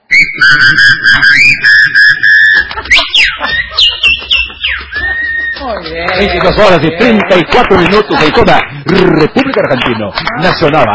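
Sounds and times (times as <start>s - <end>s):
person whistling a melody with their mouth: 0.0s - 5.8s
laughter: 0.4s - 10.9s
speech: 6.0s - 10.9s.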